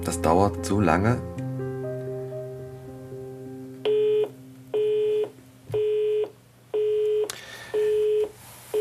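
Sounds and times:
speech: 0.1s - 1.4s
telephone signal beeps while a call is placed to a newspaper: 3.9s - 8.7s.

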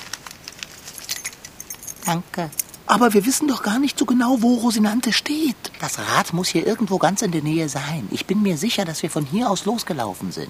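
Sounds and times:
bicycle keys jangling as they are passed from hand to hand: 0.4s - 2.8s
speech: 2.0s - 10.4s.

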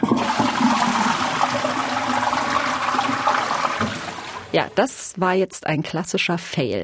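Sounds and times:
toilet flushing: 0.0s - 4.8s
speech: 4.6s - 6.8s.

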